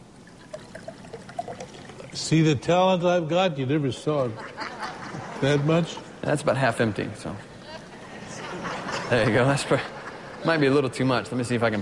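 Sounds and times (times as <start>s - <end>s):
liquid poured into a glass: 0.2s - 2.4s
speech: 1.6s - 4.7s, 5.4s - 7.5s, 9.1s - 11.7s
laughter: 4.1s - 6.1s, 7.8s - 11.1s.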